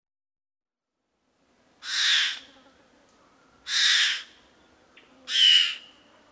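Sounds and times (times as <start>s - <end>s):
fawn-breasted bowerbird rasping hissy calls: 1.8s - 2.6s, 3.6s - 6.1s.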